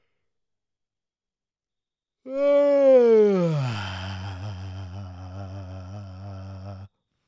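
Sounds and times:
person yawning: 2.3 - 6.9.

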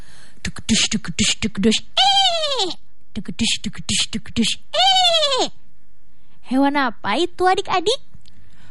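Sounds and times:
speech: 0.4 - 5.6, 6.5 - 8.1
voice imitating a loud wavering horse neigh: 2.0 - 2.8, 4.7 - 5.6.

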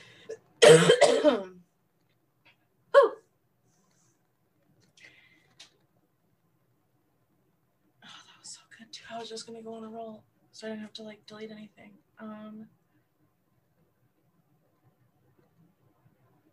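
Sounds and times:
cough: 0.6 - 1.5, 3.0 - 3.2
speech: 9.2 - 12.8.

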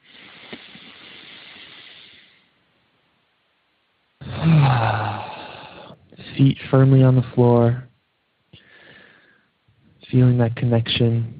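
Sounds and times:
long airy inhale: 0.0 - 2.6, 4.2 - 6.0, 8.6 - 9.6
speech: 4.4 - 5.0, 6.4 - 7.8, 10.1 - 11.3.

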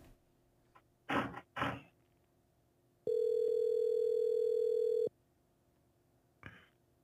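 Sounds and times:
telephone dial tone as a call is placed: 3.1 - 5.1.

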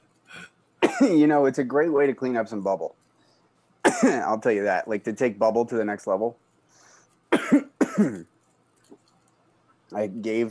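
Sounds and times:
person coughing harshly: 0.3 - 1.3, 3.9 - 4.3, 7.3 - 8.2
speech: 1.0 - 3.0, 4.0 - 6.4, 7.5 - 8.3, 9.9 - 10.5.

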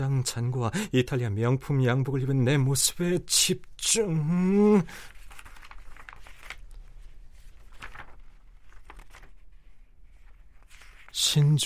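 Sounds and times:
speech: 0.0 - 5.2, 11.2 - 11.6
paper crinkle: 4.6 - 11.6
pages of a catalog being turned: 5.0 - 11.6.

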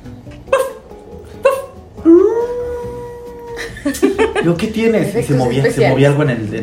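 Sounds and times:
person imitating a dog barking: 0.4 - 3.6
person imitating a dog howling: 1.4 - 3.6
laughter: 3.6 - 4.8
speech: 3.8 - 6.6.

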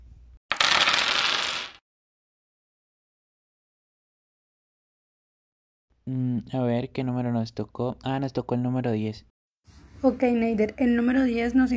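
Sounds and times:
dice rolled during a board game: 0.5 - 1.8
speech: 6.1 - 9.3, 10.0 - 11.7.

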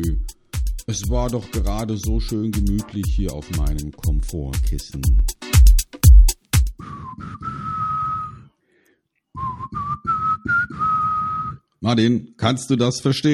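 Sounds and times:
speech: 0.9 - 5.4, 11.9 - 13.3
sharp loud percussive knocks: 5.4 - 6.8
whistled melody of a rock ballad: 6.7 - 8.6, 9.3 - 11.7.

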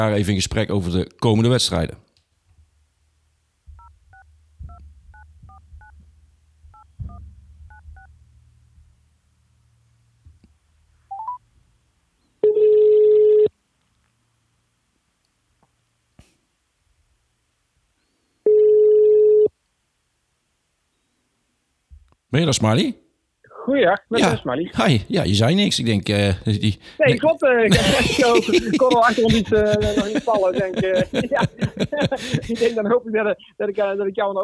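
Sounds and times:
speech: 0.0 - 2.0, 22.3 - 23.0, 23.6 - 34.4
telephone ringback tones: 12.4 - 13.5, 18.4 - 19.5
laughter: 27.7 - 32.9.

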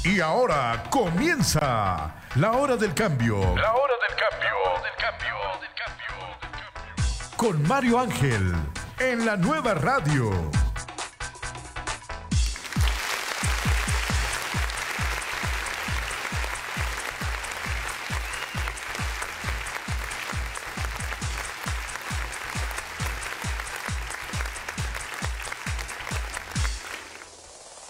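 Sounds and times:
speech: 0.1 - 5.6, 7.4 - 10.6
crowd applause: 12.4 - 27.6.

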